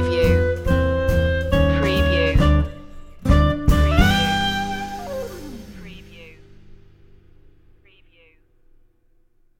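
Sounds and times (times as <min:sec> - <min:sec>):
big blues music sting: 0:00.1 - 0:07.3.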